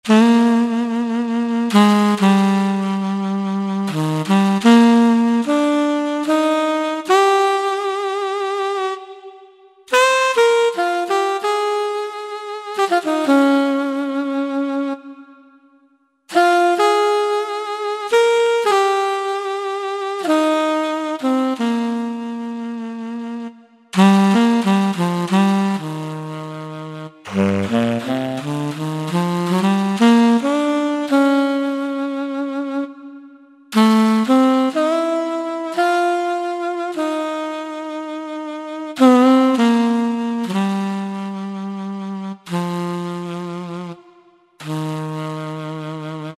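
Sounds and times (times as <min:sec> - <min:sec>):
tenor saxophone on a Yamaha PSR-3000 keyboard: 0:00.0 - 0:46.3.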